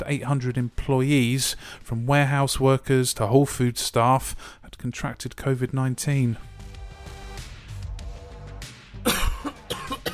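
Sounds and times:
speech: 0.0s - 6.5s
coughing: 9.0s - 10.1s.

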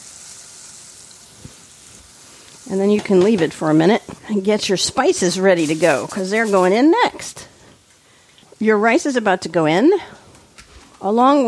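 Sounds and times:
garlic sizzling in a frying pan as it is stirred: 0.0s - 11.4s
speech: 2.7s - 7.5s, 8.6s - 10.2s, 11.0s - 11.4s.

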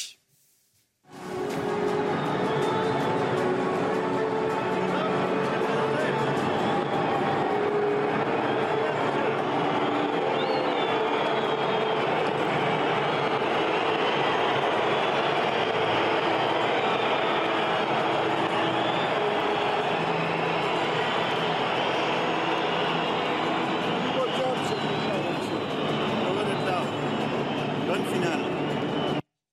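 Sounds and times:
stadium crowd booing at the French president at the Stade de France: 1.8s - 29.2s
shrill whistles from stadium crowd: 9.2s - 29.2s.

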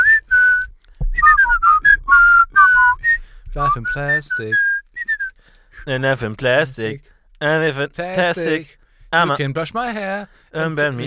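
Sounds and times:
person whistling a catchy pop tune: 0.0s - 5.4s
speech: 3.6s - 4.7s, 5.8s - 11.0s.

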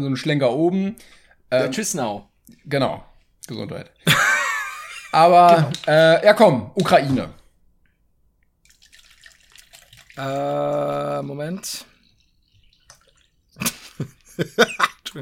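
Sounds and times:
speech: 0.0s - 4.4s, 5.1s - 7.4s, 10.2s - 11.9s, 14.0s - 15.2s
laughter: 4.1s - 5.3s, 13.6s - 15.1s
person gulping and sipping water: 5.1s - 6.1s, 8.6s - 15.2s.

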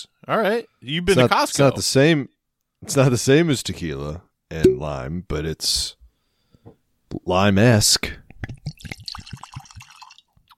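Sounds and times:
speech: 0.0s - 6.0s, 6.6s - 8.2s
sparkling water poured into a glass: 8.7s - 10.5s.

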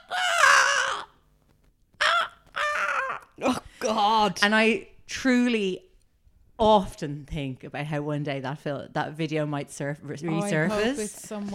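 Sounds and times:
person imitating a crow's caw: 0.0s - 1.2s, 2.0s - 4.4s
speech: 3.4s - 5.9s, 6.6s - 11.5s.

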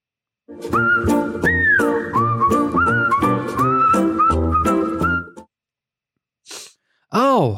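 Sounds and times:
speech: 0.5s - 1.6s
bouncy instrumental backing: 0.5s - 5.5s
whistled intro music melody: 0.5s - 5.5s.

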